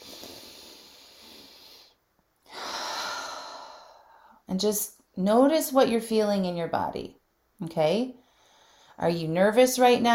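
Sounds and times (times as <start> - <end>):
deep breath in a guided breathing exercise: 0.0 - 4.4, 8.2 - 9.0
speech: 4.5 - 8.2, 9.0 - 10.1.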